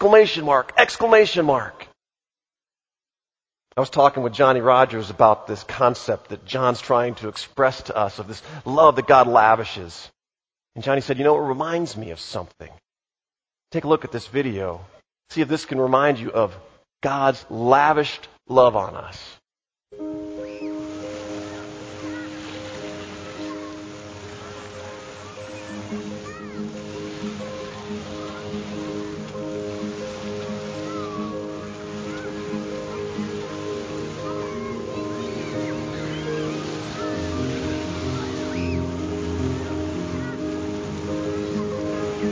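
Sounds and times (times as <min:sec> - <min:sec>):
speech: 0:00.0 - 0:01.9, 0:03.8 - 0:10.2, 0:10.8 - 0:12.8, 0:13.7 - 0:20.2
water pouring and splashing: 0:20.0 - 0:42.3
faint voices murmuring: 0:20.6 - 0:42.3.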